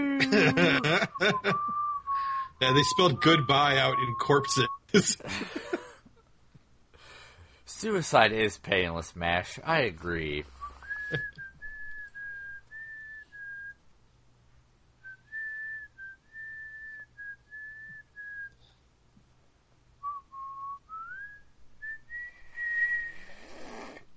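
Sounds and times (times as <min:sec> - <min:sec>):
laughter: 0:00.2 - 0:01.9, 0:04.9 - 0:06.1
speech: 0:00.2 - 0:01.9, 0:02.6 - 0:05.9, 0:07.7 - 0:10.5, 0:11.1 - 0:11.3
person whistling an unsteady off-key tune: 0:00.7 - 0:04.9, 0:10.6 - 0:13.8, 0:15.1 - 0:18.6, 0:20.1 - 0:23.5.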